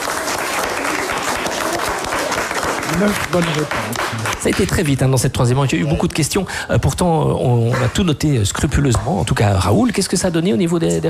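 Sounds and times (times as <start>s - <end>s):
quiz contestants applauding themselves: 0.0s - 5.2s
speech: 3.0s - 11.0s.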